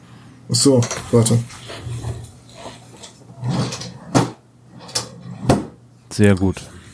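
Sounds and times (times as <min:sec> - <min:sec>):
speech: 0:00.6 - 0:01.9, 0:06.2 - 0:06.8
filing cabinet drawer rumbling and scraping along its runners: 0:01.0 - 0:05.8
filing cabinet drawer slamming with a metallic bang: 0:03.4 - 0:05.8.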